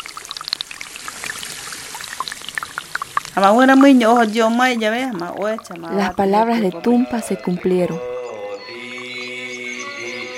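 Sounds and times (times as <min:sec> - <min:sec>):
water pouring and splashing onto soil: 0:00.0 - 0:07.3
speech: 0:03.4 - 0:08.1
loud melodic voice: 0:06.6 - 0:10.3.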